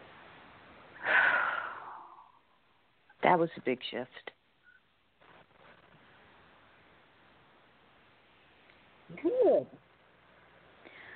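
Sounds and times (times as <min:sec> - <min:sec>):
deep breath: 0:01.0 - 0:02.5, 0:10.8 - 0:11.1
speech: 0:03.3 - 0:04.3.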